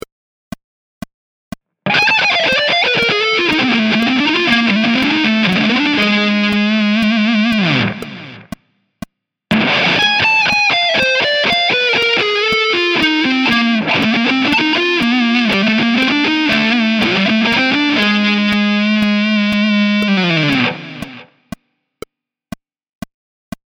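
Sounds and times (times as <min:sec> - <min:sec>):
chromatic riffs: 0:01.9 - 0:08.5, 0:09.5 - 0:21.3.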